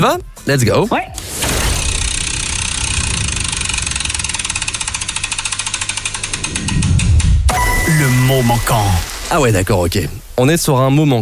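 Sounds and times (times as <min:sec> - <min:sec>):
speech: 0:00.0 - 0:01.5, 0:08.0 - 0:11.1
prize wheel spinning after being launched: 0:01.8 - 0:06.8, 0:07.5 - 0:09.4.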